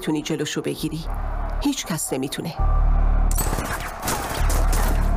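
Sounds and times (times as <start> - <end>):
speech: 0.0 - 3.4
sustained bursts of rapid gunfire: 3.4 - 5.0.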